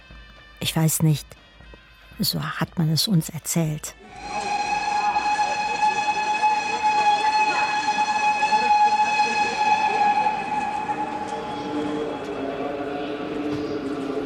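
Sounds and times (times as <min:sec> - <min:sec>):
speech: 0:00.6 - 0:01.5, 0:02.2 - 0:04.4
long steady whistle-like tone on a railway station platform: 0:04.0 - 0:14.0
low rolling rumble of passing rail cars at a station platform: 0:04.1 - 0:14.2.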